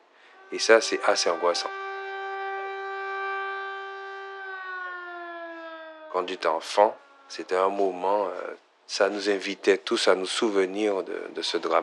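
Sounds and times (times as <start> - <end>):
fire brigade siren wailing in remembrance of a disaster: 0.2 - 8.5
speech: 0.5 - 1.8, 6.2 - 11.8.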